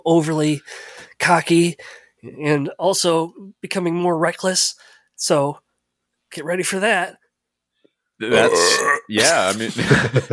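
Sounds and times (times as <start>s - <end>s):
speech: 0.0s - 5.6s, 6.3s - 7.2s, 8.2s - 10.3s
rough throaty burp: 8.3s - 9.4s
laughter: 9.2s - 10.3s.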